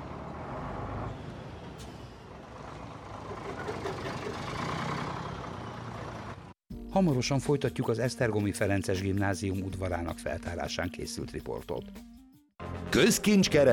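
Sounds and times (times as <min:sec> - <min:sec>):
heavy truck turning at excavation site: 0:00.0 - 0:06.6
outdoor worksite background: 0:00.0 - 0:13.7
speech: 0:07.0 - 0:12.2, 0:12.9 - 0:13.7.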